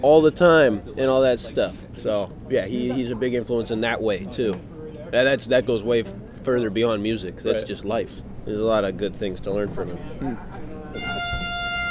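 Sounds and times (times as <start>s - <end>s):
speech: 0.0s - 10.7s
faint murmur: 0.0s - 11.8s
boat air horn blast marking the end of a market: 10.9s - 11.8s.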